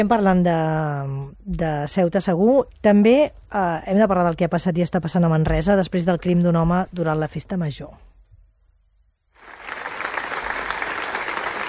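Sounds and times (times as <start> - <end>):
speech: 0.0 - 8.1
large crowd applauding at a memorial gathering in Manresa: 9.4 - 11.6.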